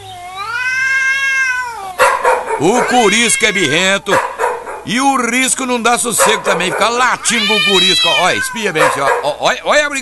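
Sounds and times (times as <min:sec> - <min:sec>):
grumpy cat meowing: 0:00.0 - 0:04.0, 0:07.1 - 0:09.0
speech: 0:02.6 - 0:10.0.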